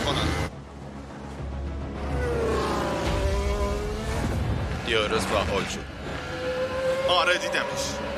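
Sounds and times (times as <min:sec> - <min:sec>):
Formula 1 race cars roaring past during a race: 0:02.0 - 0:08.1
speech: 0:04.9 - 0:06.5, 0:07.1 - 0:08.1.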